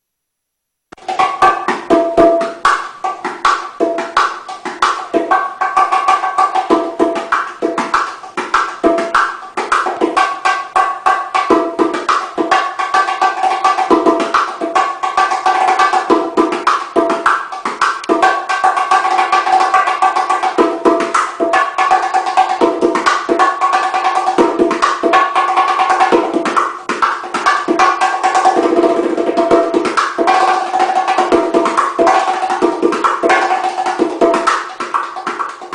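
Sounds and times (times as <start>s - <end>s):
bongo drum: 0.9s - 35.7s.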